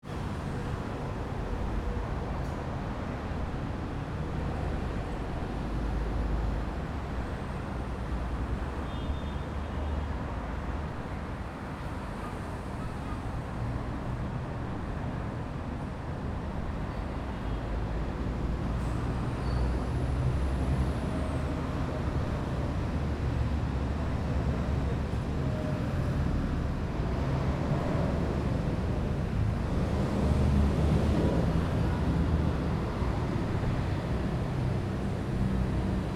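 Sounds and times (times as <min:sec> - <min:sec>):
bus on a small city main street: 0:00.0 - 0:36.1
car on a small city main street: 0:00.0 - 0:36.1.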